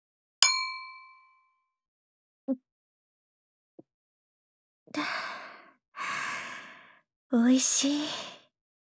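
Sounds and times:
glasses of alcohol clinking in a toast: 0.4 - 1.2
speech: 5.0 - 5.2, 7.3 - 8.3.

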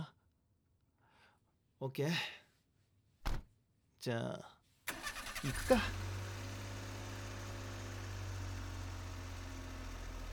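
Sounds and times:
speech: 1.8 - 2.4, 4.0 - 4.6, 5.4 - 6.1
car engine humming as car pulls away from a parking lot: 4.9 - 10.3.

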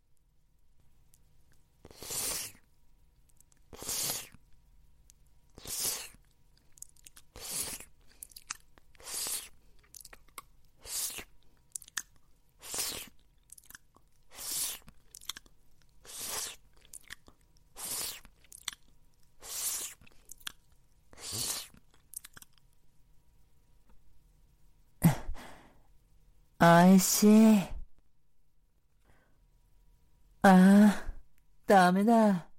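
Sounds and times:
wet licking and slurping on a saliva-soaked ball gag: 5.6 - 10.2, 10.8 - 17.2, 17.8 - 18.8, 19.4 - 20.5, 21.2 - 22.5
speech: 26.6 - 27.7, 31.9 - 32.5.

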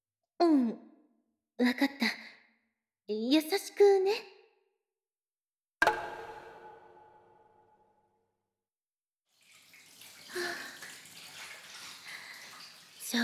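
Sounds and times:
speech: 0.4 - 0.9, 1.6 - 2.2, 3.1 - 4.3
resonant knock: 5.8 - 7.7
water splashing while the body is washed in a bath: 9.3 - 13.2.

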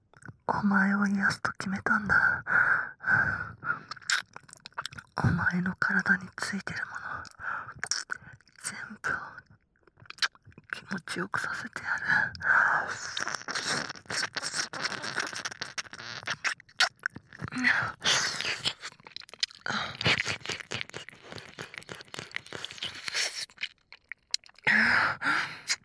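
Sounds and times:
speech: 0.6 - 3.3, 5.2 - 7.1, 10.9 - 15.2
mouth smacks and sticky clicks: 3.9 - 5.2, 7.2 - 8.6, 9.9 - 10.7, 12.3 - 24.8, 25.5 - 25.8
wet ear licking: 12.9 - 24.7.

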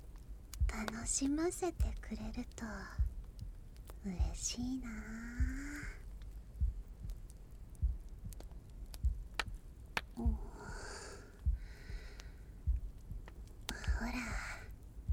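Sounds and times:
soft breaths: 0.5 - 9.2, 10.1 - 15.1
slow steady heartbeat heard during a hug: 0.6 - 15.1
speech: 0.8 - 3.1, 4.0 - 6.0.

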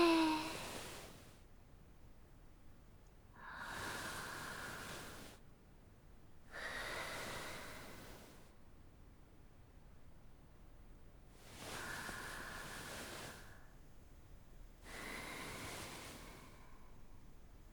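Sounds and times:
slow faint breathing in and out during a guided breathing exercise: 0.0 - 1.2, 3.4 - 5.4, 6.5 - 8.5, 11.4 - 13.8, 14.8 - 17.2.

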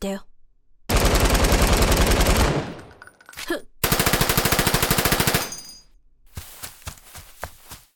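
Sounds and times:
automatic gunfire from a team shooter video game: 0.9 - 2.9, 3.8 - 5.6.

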